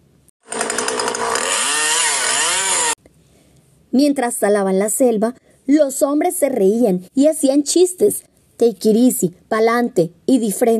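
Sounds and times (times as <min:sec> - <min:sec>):
chainsaw cutting trees: 0:00.4 - 0:03.0
speech: 0:03.9 - 0:10.7.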